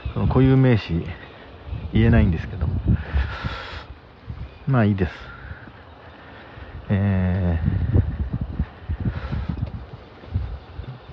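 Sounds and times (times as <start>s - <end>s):
light breeze near rice paddies buffeting the microphone: 0.0s - 11.1s
speech: 0.2s - 1.2s, 1.9s - 3.6s, 4.7s - 5.3s, 6.9s - 8.1s.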